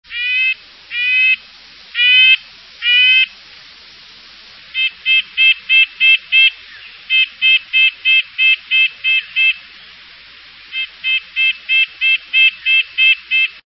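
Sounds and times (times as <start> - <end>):
red-breasted nuthatch calling: 0.1 - 1.4, 2.0 - 3.3, 4.7 - 10.0, 10.7 - 13.6.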